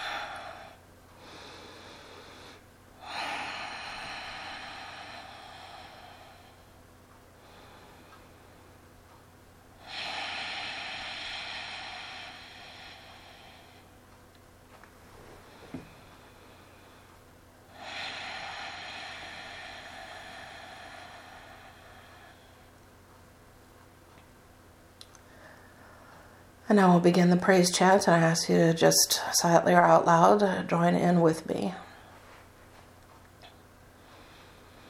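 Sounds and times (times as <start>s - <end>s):
long slow deep breaths taken to center a group: 0.0s - 8.9s, 9.8s - 14.0s, 15.4s - 22.8s, 25.2s - 26.6s, 31.8s - 34.8s
steady low hum: 0.0s - 34.8s
speech: 26.7s - 31.8s.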